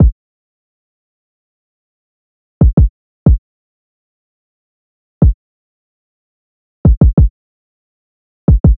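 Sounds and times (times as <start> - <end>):
92 BPM kick drum loop: 2.6 - 3.4, 6.9 - 7.3, 8.5 - 8.7.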